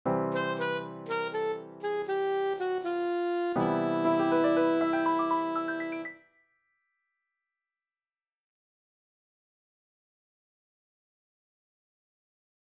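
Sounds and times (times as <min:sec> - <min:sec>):
ending music with wind instruments: 0:00.3 - 0:06.2.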